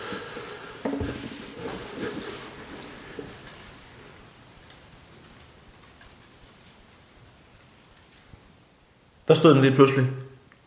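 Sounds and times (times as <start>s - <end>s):
hail pattering: 1.9s - 8.5s
speech: 9.3s - 10.2s.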